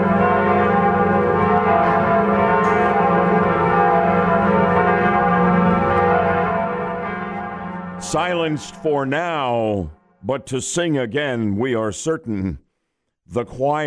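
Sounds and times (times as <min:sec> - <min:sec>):
large bells of Notre Dame Cathedral ringing in a dense peal: 0:00.0 - 0:10.6
speech: 0:08.1 - 0:12.6, 0:13.3 - 0:13.8.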